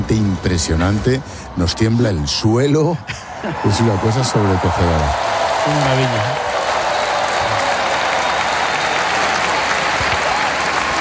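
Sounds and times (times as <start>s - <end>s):
speech: 0.1s - 6.6s
large crowd applauding at a ceremony in Barcelona: 3.4s - 10.9s.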